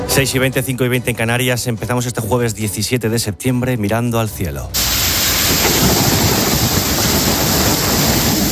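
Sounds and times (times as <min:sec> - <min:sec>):
speech: 0:00.2 - 0:05.0
deep low rumble of thunder: 0:04.8 - 0:08.5
dense heavy rain pouring in a thunderstorm: 0:04.8 - 0:08.5.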